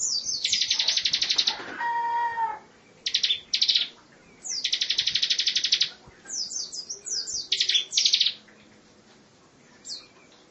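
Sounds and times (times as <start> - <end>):
lovebird giving a long trill: 0.0 - 8.4.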